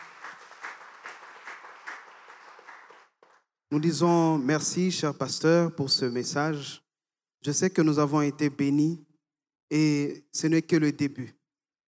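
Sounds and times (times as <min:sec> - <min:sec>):
congregation at a church service clapping rhythmically: 0:00.0 - 0:03.4
speech: 0:03.7 - 0:06.8, 0:07.4 - 0:09.1, 0:09.7 - 0:11.4.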